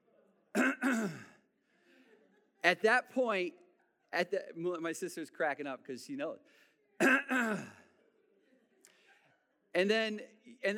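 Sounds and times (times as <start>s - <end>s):
man clearing his throat: 0.6s - 1.4s, 7.0s - 7.8s
speech: 2.6s - 7.8s, 9.8s - 10.7s.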